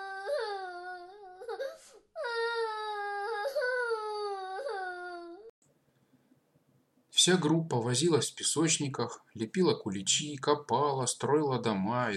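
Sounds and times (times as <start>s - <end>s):
little girl crying behind a kindergarten fence: 0.0s - 5.5s
speech: 7.2s - 12.1s.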